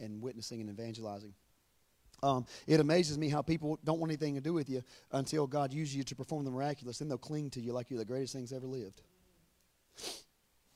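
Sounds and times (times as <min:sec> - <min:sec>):
speech: 0:00.0 - 0:01.5, 0:02.2 - 0:09.1, 0:10.0 - 0:10.3
sneeze: 0:10.0 - 0:10.3.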